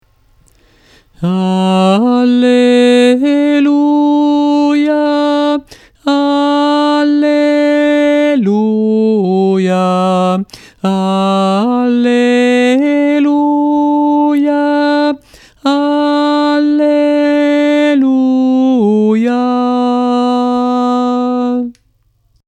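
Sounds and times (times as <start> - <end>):
tenors singing an alleluia: 1.2 - 21.8.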